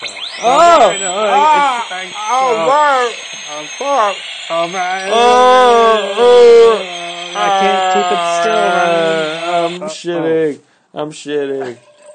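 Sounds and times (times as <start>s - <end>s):
high-pitched drill whirring: 0.0s - 9.8s
speech: 0.0s - 11.9s
voice making wavering drawn-out vocal sounds: 0.4s - 10.1s.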